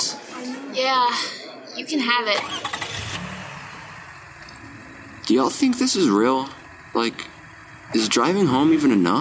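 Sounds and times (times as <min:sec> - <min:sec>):
speech: 0:00.8 - 0:02.9, 0:05.3 - 0:07.3, 0:07.9 - 0:09.1
car engine revving: 0:02.4 - 0:09.1.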